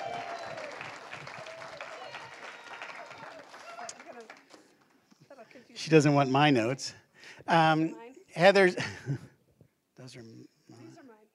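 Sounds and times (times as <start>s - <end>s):
voices whooping: 0.0s - 4.1s
crowd applauding: 0.0s - 5.1s
speech: 5.8s - 9.3s.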